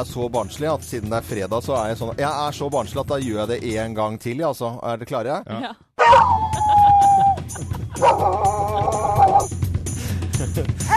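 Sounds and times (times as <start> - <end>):
speech: 0.0 - 6.7, 7.5 - 8.6
recorded dogs barking: 6.0 - 9.5
laughter: 6.1 - 10.9.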